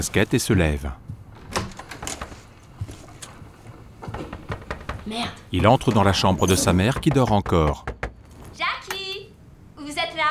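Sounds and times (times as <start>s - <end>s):
speech: 0.0s - 1.0s, 5.1s - 7.9s
dull knocks on a door: 4.0s - 8.4s.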